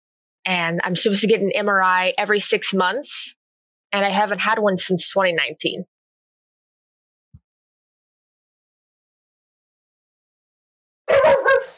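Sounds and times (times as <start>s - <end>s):
speech: 0.5s - 5.9s
dog barking: 11.1s - 11.7s.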